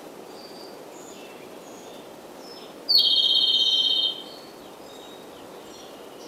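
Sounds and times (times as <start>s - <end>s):
Japanese robin singing a high trilled phrase: 2.9s - 4.4s.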